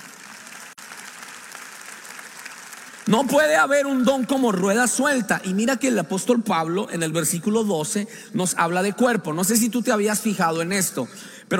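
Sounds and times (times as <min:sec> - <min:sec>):
congregation applauding during a church service: 0:00.0 - 0:05.6
speech: 0:03.1 - 0:11.5.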